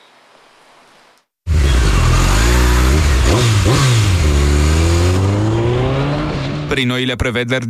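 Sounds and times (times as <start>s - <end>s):
motorcycle engine revving and accelerating: 1.5s - 6.7s
speech: 6.7s - 7.6s.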